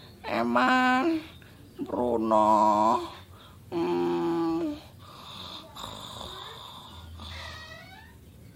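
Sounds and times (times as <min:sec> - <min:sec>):
speech: 0:00.3 - 0:04.0
person snoring while asleep: 0:03.8 - 0:07.8.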